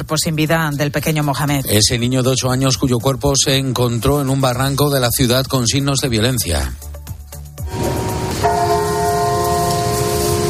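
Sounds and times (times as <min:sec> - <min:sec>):
speech: 0:00.0 - 0:06.9
church bells tolling during minute of silence: 0:07.7 - 0:10.4.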